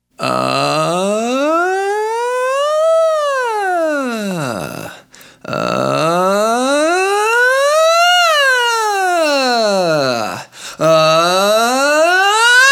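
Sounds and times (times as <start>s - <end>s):
man saying uhhh: 0.2s - 12.6s.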